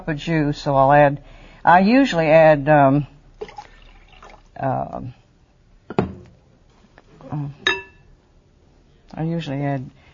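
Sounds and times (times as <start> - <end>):
speech: 0.0 - 3.6, 4.6 - 5.2, 7.3 - 7.7, 9.1 - 10.0
liquid draining from a can: 3.4 - 4.6.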